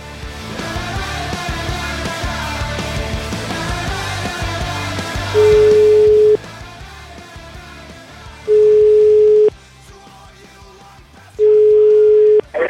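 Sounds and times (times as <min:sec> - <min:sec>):
music: 0:00.0 - 0:12.6
ringing tone of an outgoing telephone call: 0:05.4 - 0:06.4, 0:08.5 - 0:09.5, 0:11.4 - 0:12.6.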